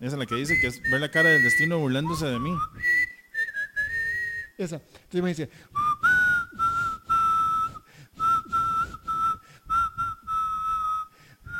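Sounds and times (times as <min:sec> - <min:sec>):
speech: 0:00.0 - 0:02.9, 0:04.6 - 0:05.8
person whistling a song melody in a single tone: 0:00.2 - 0:04.6, 0:05.8 - 0:11.5.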